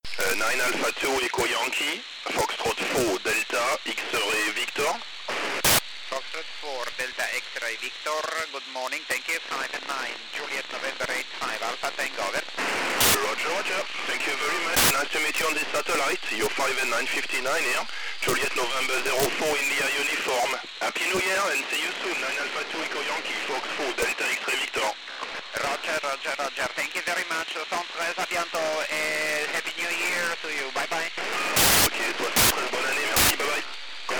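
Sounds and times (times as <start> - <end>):
BY70-1 satellite radio signal at 436209kHz: 0.0 - 34.1.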